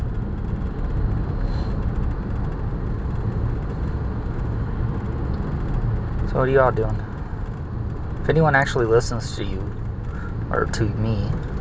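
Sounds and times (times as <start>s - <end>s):
car driving in heavy traffic: 0.0s - 11.5s
speech: 6.3s - 7.1s, 8.3s - 9.8s, 10.5s - 11.5s.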